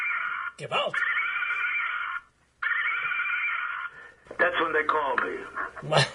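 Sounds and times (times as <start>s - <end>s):
horse neighing: 0.0s - 4.0s
speech: 0.6s - 1.2s, 4.4s - 6.1s.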